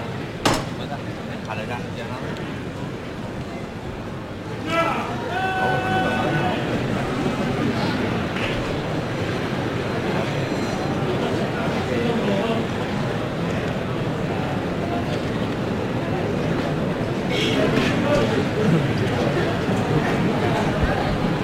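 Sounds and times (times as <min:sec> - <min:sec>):
dense crowd murmur: 0:00.0 - 0:21.4
hammer knocker striking on a canopied palio float: 0:00.4 - 0:00.8
people calling for silence: 0:04.5 - 0:06.9
people shouting: 0:04.6 - 0:06.8.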